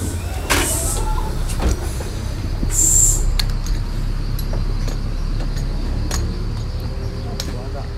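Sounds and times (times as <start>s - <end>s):
old city bus air brakes hissing: 0.0s - 4.3s
old city bus engine low rumble: 0.0s - 7.9s.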